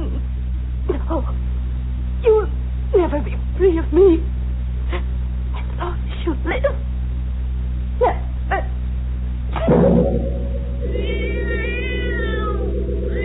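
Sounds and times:
steady low hum: 0.0 - 13.2
speech: 3.6 - 4.3
cat meowing and yowling: 10.9 - 13.2.

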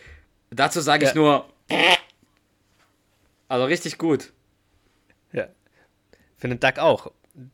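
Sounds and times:
speech: 0.5 - 2.0, 3.5 - 4.4, 5.3 - 5.6, 6.4 - 7.5
raspberry blown with the lips imitating a fart: 1.7 - 2.2.

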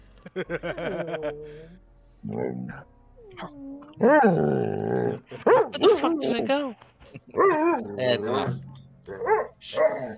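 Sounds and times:
laughter: 0.2 - 1.8
speech: 0.2 - 10.1
dog barking and grumbling: 2.3 - 6.6, 7.2 - 10.1.

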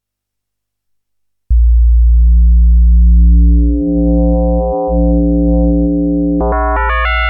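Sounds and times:
two-operator FM synthesis tone from a Waldorf Iridium keyboard synthesizer: 1.5 - 7.2.

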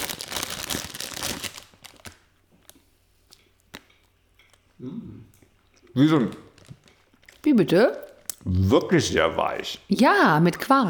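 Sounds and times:
packaging crinkling as a package of fresh coconut macaroons is opened: 0.0 - 2.8, 6.5 - 7.4
speech: 6.0 - 6.4, 7.5 - 10.8.

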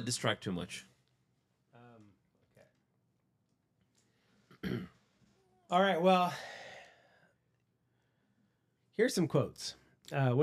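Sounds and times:
speech: 0.0 - 0.9, 4.6 - 5.0, 5.7 - 6.6, 9.0 - 10.4
voiced throat-clearing rumble: 4.5 - 5.1
loud sharp cough: 4.6 - 5.0.

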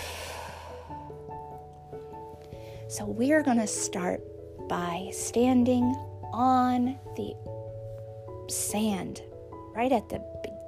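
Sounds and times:
hard exhale during a relaxation breathing exercise: 0.0 - 1.3
speech: 2.9 - 7.5, 8.5 - 10.6.

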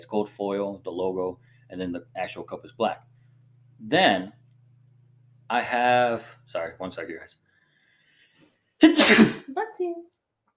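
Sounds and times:
speech: 0.0 - 3.1, 3.8 - 4.4, 5.5 - 7.4, 8.8 - 10.2
sneeze: 8.8 - 9.5.

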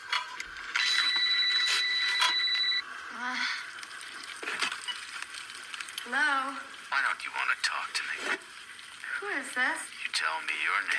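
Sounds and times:
crackling sizzling noise: 0.0 - 10.9
telephone ringing with shrill electronic tone: 0.7 - 2.9
speech: 6.1 - 8.6, 9.2 - 10.9.

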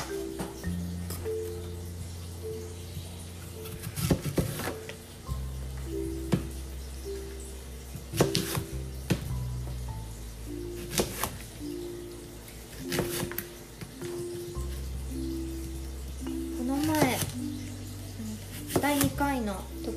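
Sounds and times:
quiet tonal background: 0.0 - 19.9
kitchen knife chopping food: 3.6 - 4.9, 8.1 - 9.3, 10.8 - 11.4, 12.7 - 14.2, 18.5 - 19.2.

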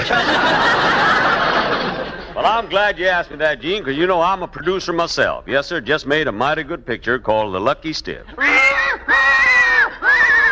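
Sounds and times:
laughter: 0.0 - 3.0, 8.3 - 10.5
speech: 2.4 - 9.5
horse whinnying: 8.4 - 10.5.

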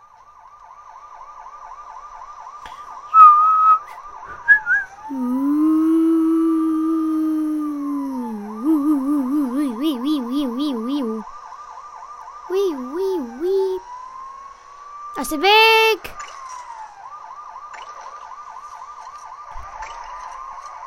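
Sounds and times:
lower wavering siren-like tones: 0.4 - 20.8
police trill whistle blowing: 2.9 - 5.1
speech: 5.1 - 5.5, 15.3 - 15.8.

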